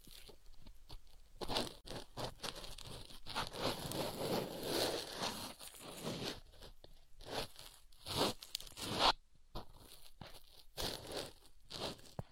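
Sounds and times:
sharp scrape: 0:01.5 - 0:06.6, 0:07.2 - 0:09.2, 0:10.8 - 0:12.2.

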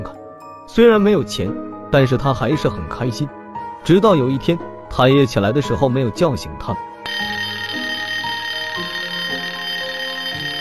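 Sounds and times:
speech: 0:00.8 - 0:06.9
small golden alarm clock ringing: 0:07.0 - 0:10.5.

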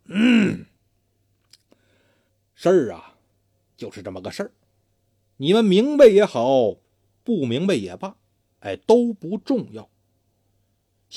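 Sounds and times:
man clearing his throat: 0:00.0 - 0:00.7
speech: 0:02.6 - 0:03.1, 0:03.8 - 0:04.6, 0:05.4 - 0:09.9.

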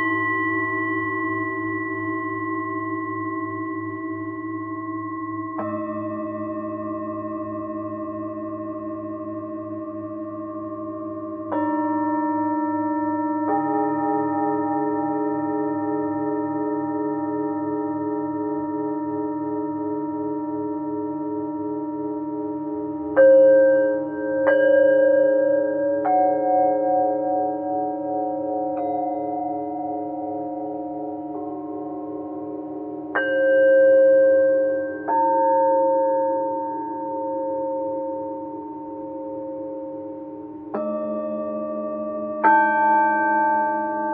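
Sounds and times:
singing bowls ringing in sustained tones: 0:00.0 - 0:44.1.

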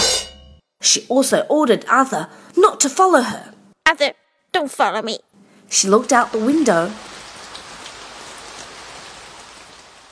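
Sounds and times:
speech: 0:00.8 - 0:07.1
rain falling: 0:06.0 - 0:10.0.

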